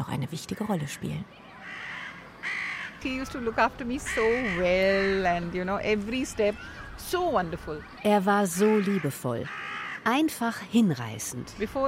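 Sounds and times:
speech: 0.3s - 1.9s, 3.0s - 11.8s
crows cawing: 0.9s - 5.7s, 6.4s - 7.0s, 8.6s - 10.1s.

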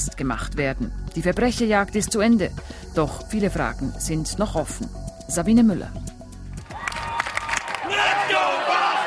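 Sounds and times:
speech: 0.0s - 6.1s
large outdoor crowd cheering and shouting in the streets: 6.6s - 9.0s
whoops from the crowd: 6.6s - 9.0s.

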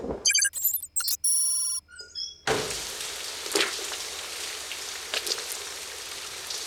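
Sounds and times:
short electronic jingle of bright tones: 0.3s - 1.8s
steady rain with drops and splashes: 2.7s - 6.6s.

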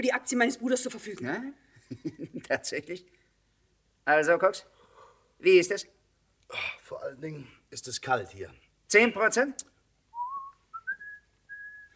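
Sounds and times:
speech: 0.0s - 3.2s, 4.0s - 4.7s, 5.4s - 9.7s
laughter: 1.9s - 2.6s
person whistling a short tune: 10.2s - 11.9s.

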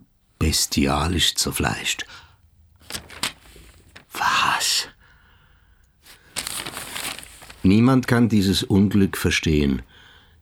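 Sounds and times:
speech: 0.5s - 2.3s, 7.6s - 9.9s
newspaper pages rustling as they are flipped: 2.8s - 4.5s, 6.0s - 7.8s.

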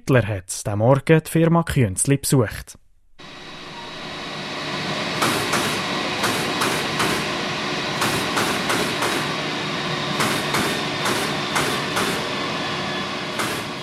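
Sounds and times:
speech: 0.0s - 2.8s
grinding drone of shoe soles being ground: 3.2s - 13.8s
machinery humming in an orthopedic shoe factory production hall: 3.2s - 13.8s.

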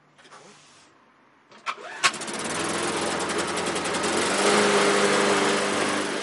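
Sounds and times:
old unused farm engine starting with bangs: 1.5s - 6.2s.

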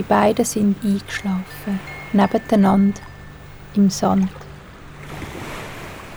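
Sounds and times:
speech: 0.0s - 3.1s, 3.7s - 4.4s
sea waves surging on a beach: 0.0s - 6.1s.

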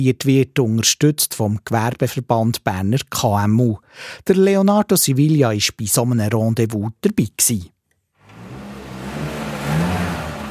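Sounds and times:
speech: 0.0s - 7.8s
car engines revving in a training workshop: 8.2s - 10.5s.

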